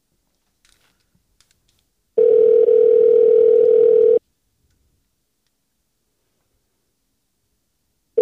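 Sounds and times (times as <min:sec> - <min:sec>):
electronic ringback tone on a phone line: 0:02.2 - 0:04.2.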